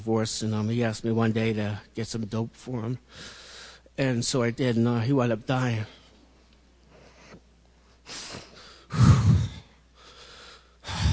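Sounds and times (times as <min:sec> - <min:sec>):
speech: 0:00.0 - 0:03.4, 0:04.0 - 0:06.0
man breathing deeply: 0:03.1 - 0:03.9, 0:08.0 - 0:11.1.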